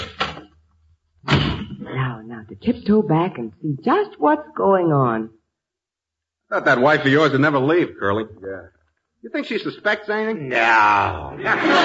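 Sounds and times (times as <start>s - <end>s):
front door banging open: 1.2s - 1.8s
speech: 2.4s - 5.4s, 6.5s - 11.8s
laughter: 10.6s - 11.8s.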